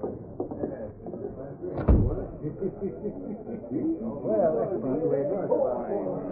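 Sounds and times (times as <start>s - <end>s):
murmuring voices and indistinct talk: 0.0s - 6.3s
heavy thud of a door being shut: 1.8s - 2.4s
laughter: 2.1s - 6.3s.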